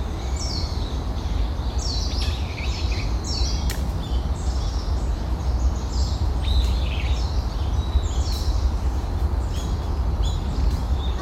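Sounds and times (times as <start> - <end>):
small birds chirping and twittering: 0.0 - 11.2
sharp clicks and snaps: 3.6 - 4.0.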